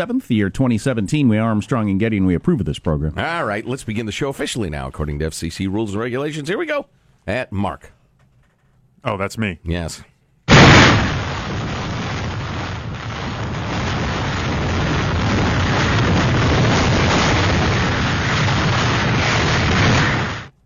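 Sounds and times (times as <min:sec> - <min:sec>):
speech: 0:00.0 - 0:08.0, 0:09.0 - 0:10.1
200 mph hurricane wind roaring: 0:10.5 - 0:20.5.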